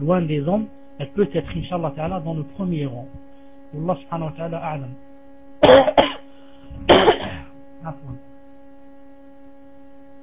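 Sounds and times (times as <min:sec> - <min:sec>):
speech: 0:00.0 - 0:06.9, 0:07.8 - 0:08.3
steady low hum: 0:00.0 - 0:10.2
man coughing during a religious lecture: 0:05.6 - 0:07.5.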